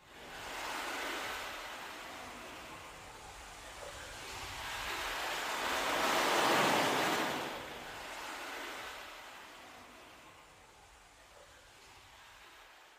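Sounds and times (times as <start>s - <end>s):
ocean waves washing in and out: 0.0s - 12.9s.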